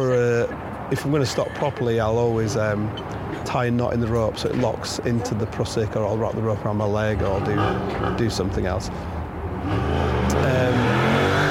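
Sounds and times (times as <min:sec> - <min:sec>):
speech: 0:00.0 - 0:09.8
motorbike engine revving as a man rides off: 0:09.6 - 0:11.4.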